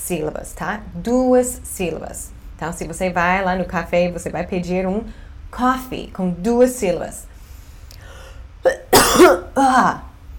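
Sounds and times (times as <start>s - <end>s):
speech: 0.1s - 7.3s, 8.6s - 10.1s
person coughing rough throaty coughs: 8.7s - 10.0s.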